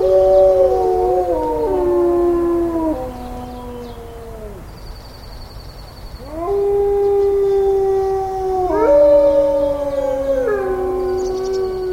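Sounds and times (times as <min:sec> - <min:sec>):
wolves howling at a wildlife center near Yellowstone: 0:00.0 - 0:04.7, 0:06.2 - 0:11.9.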